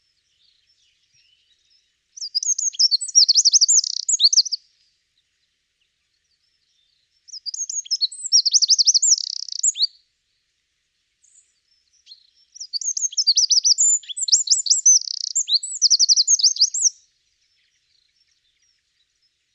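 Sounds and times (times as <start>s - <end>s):
Eurasian wren Troglodytes troglodytes song: 0.0s - 19.5s.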